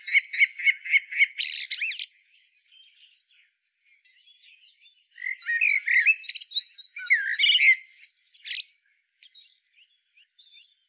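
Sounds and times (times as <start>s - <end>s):
Common blackbird calls: 0.0s - 2.9s, 5.2s - 9.5s.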